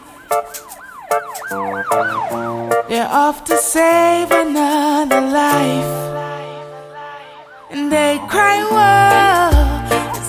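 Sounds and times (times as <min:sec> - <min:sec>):
emergency vehicle siren wailing in a city: 0:00.0 - 0:03.2, 0:05.9 - 0:09.5
speech: 0:01.5 - 0:06.2.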